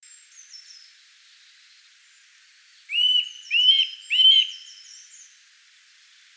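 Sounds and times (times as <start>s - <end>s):
Eurasian nuthatch Sitta europaea whistled calls: 2.9s - 5.3s.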